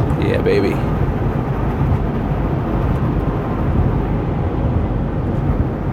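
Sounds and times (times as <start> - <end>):
big semi truck engine roaring on a one-lane highway: 0.0 - 5.9.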